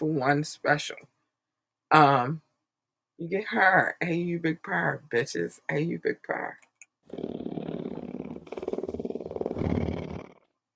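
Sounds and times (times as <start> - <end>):
speech: 0.0 - 1.1, 1.9 - 2.4, 3.2 - 7.4
big cat roaring: 7.1 - 10.4.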